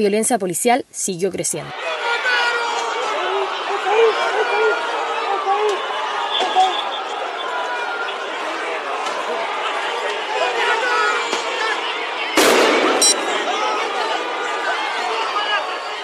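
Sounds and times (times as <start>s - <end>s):
speech: 0.0s - 2.1s
dense street protest crowd roaring and chattering: 1.7s - 16.0s
sharp loud bang or scuffle: 12.4s - 13.9s.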